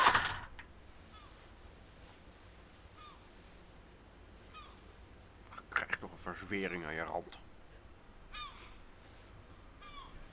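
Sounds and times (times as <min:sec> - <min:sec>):
soft hiss: 0:00.0 - 0:10.3
blackbird calling: 0:02.9 - 0:03.3, 0:04.5 - 0:04.9, 0:08.2 - 0:08.8, 0:09.8 - 0:10.3
speech: 0:06.3 - 0:07.5.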